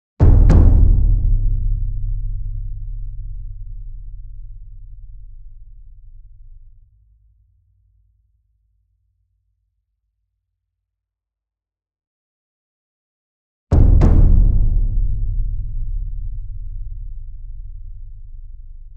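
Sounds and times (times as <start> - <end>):
large double concert bass drum: 0.2 - 6.1, 13.7 - 18.9.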